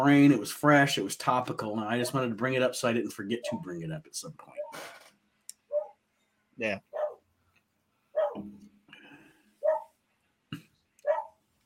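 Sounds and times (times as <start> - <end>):
speech: 0.0 - 5.0, 6.6 - 6.9
dog barking: 5.7 - 6.0, 6.9 - 7.2, 8.2 - 8.4, 9.6 - 9.9, 11.0 - 11.4.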